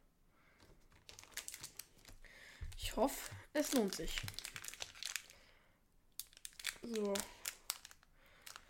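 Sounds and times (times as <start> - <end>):
trading card booster pack foil tearing open: 1.1 - 2.2, 3.7 - 5.3, 6.2 - 8.6
speech: 2.9 - 4.4, 6.9 - 7.4.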